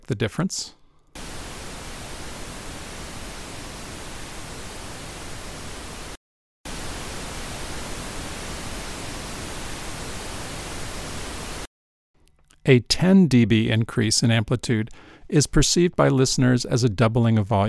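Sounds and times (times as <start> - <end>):
speech: 0.1 - 0.8, 12.7 - 17.6
pink noise bursts: 1.2 - 11.7.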